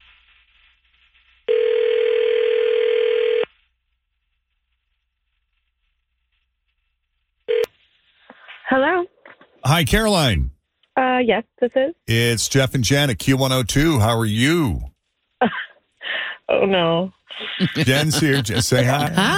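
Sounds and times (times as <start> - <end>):
steady telephone tone: 1.5 - 3.5
voice over a telephone line: 9.7 - 10.5, 12.1 - 14.9, 17.6 - 19.3
speech: 9.8 - 10.5, 11.2 - 15.6, 16.5 - 19.3
laughter: 17.3 - 19.3.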